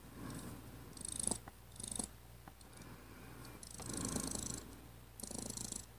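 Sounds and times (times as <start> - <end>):
purring: 0.2 - 2.1, 3.5 - 5.9.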